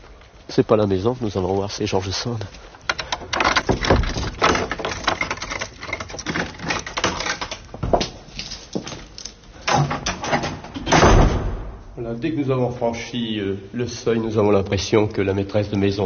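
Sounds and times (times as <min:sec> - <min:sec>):
speech: 0:00.6 - 0:02.7, 0:12.1 - 0:16.0
house door being opened with knocks creaks and clunks: 0:02.9 - 0:08.2, 0:09.6 - 0:11.8
heavier door bang: 0:03.4 - 0:04.8, 0:09.7 - 0:12.0.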